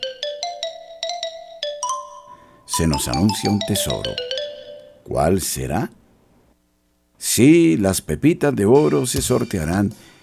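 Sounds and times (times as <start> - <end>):
marimba melody: 0.0 - 5.0
speech: 2.8 - 4.3, 5.1 - 6.0, 7.2 - 10.1.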